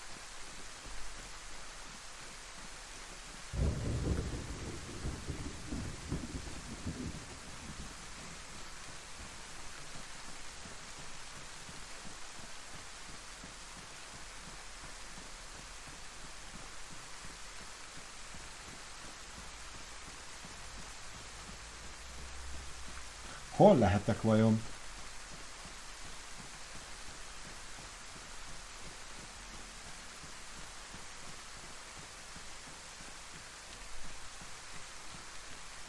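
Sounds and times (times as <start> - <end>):
steady soft rain hissing in a thunderstorm: 0.0 - 35.8
low rumbling roll of thunder: 3.6 - 7.9
speech: 23.6 - 24.8.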